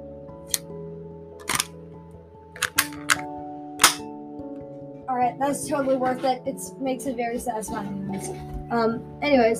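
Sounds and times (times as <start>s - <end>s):
airsoft gun being reloaded: 1.4s - 1.7s, 2.6s - 4.0s
speech: 5.2s - 9.5s.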